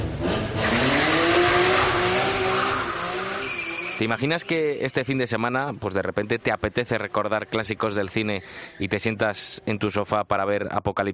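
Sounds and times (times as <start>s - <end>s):
car engine revving hard: 0.0s - 8.8s
tires squealing and burning rubber on pavement: 0.5s - 5.2s, 6.2s - 9.1s
speech: 4.0s - 11.1s.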